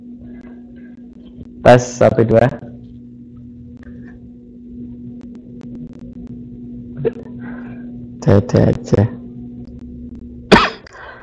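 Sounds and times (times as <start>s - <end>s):
speech: 1.6s - 2.6s, 8.3s - 9.2s
single sharp loud cough: 10.5s - 10.8s.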